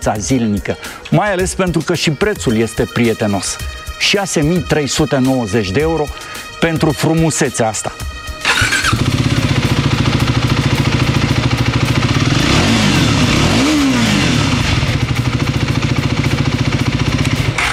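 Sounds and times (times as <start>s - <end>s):
speech: 0.0s - 8.1s
motorcycle engine starting and revving: 8.4s - 17.7s.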